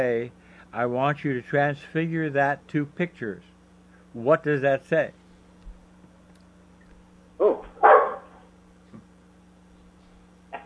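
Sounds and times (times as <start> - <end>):
speech: 0.0 - 3.5, 4.2 - 5.2
low steady hum: 0.0 - 10.6
dog barking: 7.4 - 8.5.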